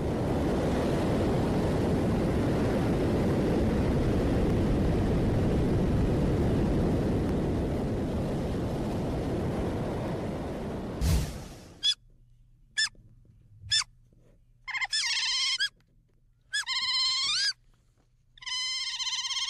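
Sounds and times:
rush of noise: 0.0 - 11.8
otter chirping and squealing: 14.7 - 15.7, 16.5 - 17.6, 18.4 - 19.4.

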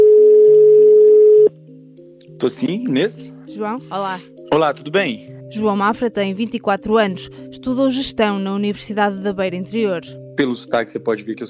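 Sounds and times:
telephone ringback tone beep: 0.0 - 1.5
speech: 2.4 - 11.4.

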